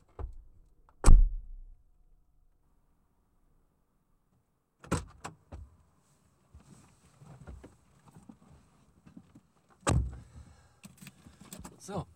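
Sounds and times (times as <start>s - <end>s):
car door slamming shut with a heavy thud: 1.0s - 1.6s
rustling inside the vehicle: 5.4s - 12.0s
speech: 11.9s - 12.1s.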